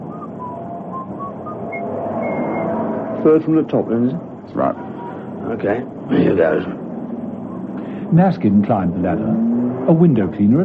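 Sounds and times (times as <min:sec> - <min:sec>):
person whistling tunelessly: 0:00.0 - 0:02.8
speech: 0:03.2 - 0:04.9, 0:05.5 - 0:06.8, 0:08.1 - 0:10.6.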